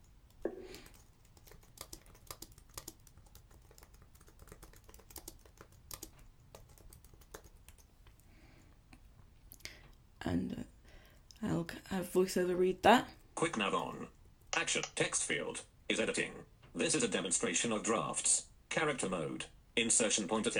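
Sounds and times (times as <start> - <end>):
keyboard typing: 0.0 - 8.3, 13.1 - 15.3
speech: 10.2 - 10.7, 11.4 - 20.5.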